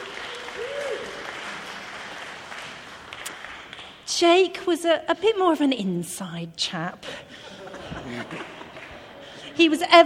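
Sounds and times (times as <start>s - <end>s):
audience clapping: 0.0s - 4.1s, 8.1s - 9.4s
speech: 4.2s - 7.4s, 8.1s - 8.6s, 9.6s - 10.0s
laughter: 7.3s - 9.8s.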